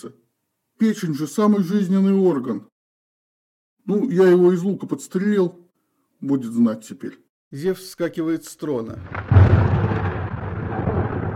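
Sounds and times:
speech: 0:00.0 - 0:00.2, 0:00.8 - 0:02.7, 0:03.9 - 0:05.6, 0:06.2 - 0:09.3
thunder rumbling sound effect: 0:09.0 - 0:11.3.

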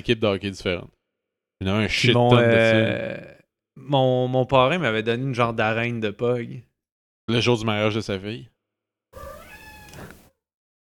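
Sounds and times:
speech: 0:00.0 - 0:01.0, 0:01.6 - 0:06.7, 0:07.3 - 0:08.5
cat meowing: 0:09.2 - 0:10.3.

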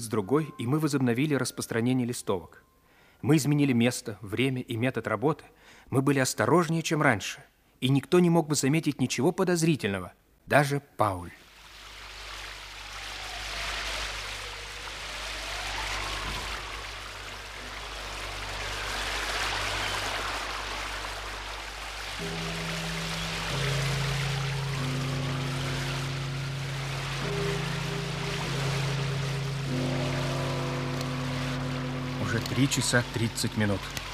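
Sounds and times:
speech: 0:00.0 - 0:11.4, 0:32.7 - 0:34.1
steady rain at night heard from inside a car through the windshield: 0:11.4 - 0:34.1
sustained tones: 0:12.8 - 0:34.1.

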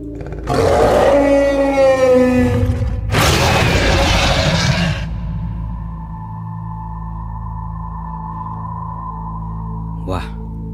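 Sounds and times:
deep roar of a water dragon: 0:00.0 - 0:06.0
speech: 0:00.5 - 0:00.8.

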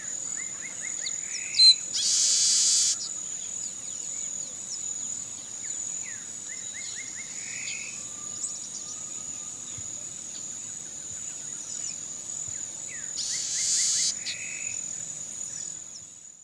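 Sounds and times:
bird song of quick chirped and whistled notes: 0:00.0 - 0:16.4
continuous high insect drone: 0:00.0 - 0:16.4.

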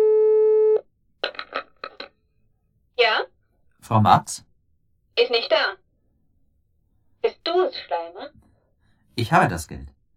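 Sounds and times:
humming telephone line tone from a phone placing a local call: 0:00.0 - 0:00.8
speech: 0:03.9 - 0:04.5, 0:05.2 - 0:05.8, 0:07.5 - 0:08.4, 0:09.2 - 0:09.9.

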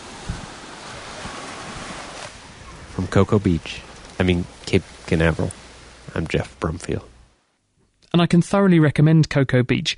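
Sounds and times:
wind buffeting: 0:00.0 - 0:07.3
ocean surf at a beach a day before a storm: 0:00.0 - 0:07.5
speech: 0:03.0 - 0:07.1, 0:08.2 - 0:09.9.

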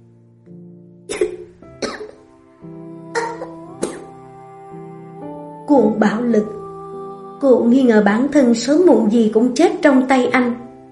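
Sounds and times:
woman dry coughing: 0:01.1 - 0:02.2
speech: 0:05.7 - 0:06.6, 0:07.4 - 0:10.6.

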